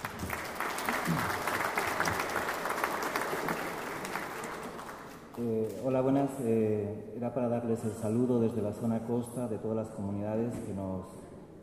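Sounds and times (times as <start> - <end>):
audience applause: 0.0 - 5.4
speech: 5.4 - 11.2.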